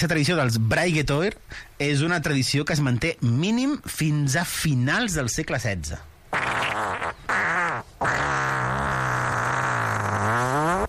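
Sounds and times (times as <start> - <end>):
speech: 0.0 - 6.4
long drawn-out fart: 6.3 - 10.8.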